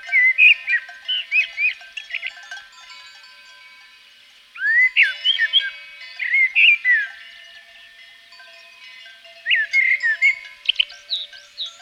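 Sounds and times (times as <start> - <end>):
common blackbird singing in Provence: 0.0 - 3.0, 4.6 - 7.3, 9.4 - 11.8.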